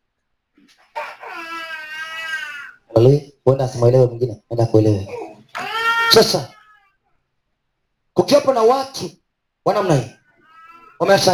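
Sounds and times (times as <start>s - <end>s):
speech: 0.6s - 1.0s, 3.0s - 5.2s, 6.1s - 6.6s, 8.2s - 10.2s, 11.0s - 11.3s
baby crying: 1.0s - 3.0s, 5.1s - 7.0s, 9.8s - 11.3s.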